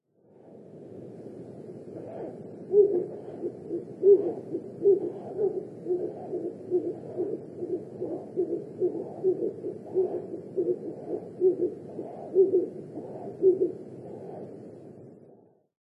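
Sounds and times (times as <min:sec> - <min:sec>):
Ural owl calling in Nikko: 0:02.0 - 0:14.5.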